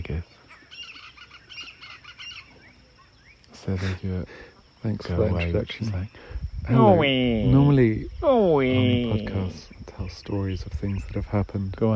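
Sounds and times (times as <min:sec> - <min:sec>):
flock of birds chirping near a fruit tree: 0:00.0 - 0:11.9
speech: 0:03.6 - 0:11.9.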